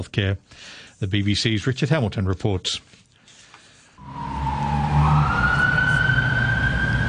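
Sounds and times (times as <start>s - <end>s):
speech: 0.0s - 3.0s
busy city street traffic with rumbling engines: 4.0s - 7.0s
siren of a passing emergency vehicle: 4.0s - 7.0s.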